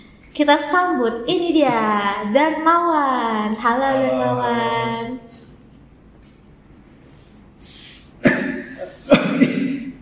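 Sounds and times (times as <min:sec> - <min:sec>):
speech: 0:00.4 - 0:05.4
person coughing: 0:08.2 - 0:10.0.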